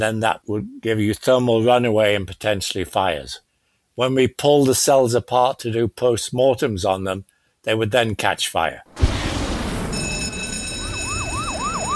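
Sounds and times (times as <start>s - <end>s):
speech: 0.0s - 9.0s
rumble: 8.9s - 11.9s
fire truck siren wailing: 9.0s - 11.9s.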